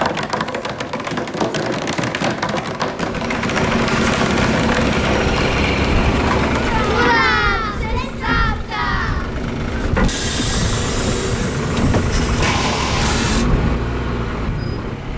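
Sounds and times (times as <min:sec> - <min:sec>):
vehicle engine rumbling: 0:00.2 - 0:15.1
children chattering and calling at the final bus stop in Hrčava: 0:04.1 - 0:09.8
air brakes releasing with a sharp hiss: 0:10.0 - 0:13.6.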